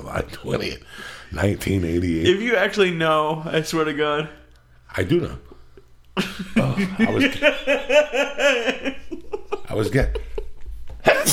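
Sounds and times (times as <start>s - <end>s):
speech: 0.1s - 5.5s, 6.2s - 9.1s, 9.7s - 10.3s
rhythmic laughter: 6.2s - 11.3s
person sneezing: 11.1s - 11.3s.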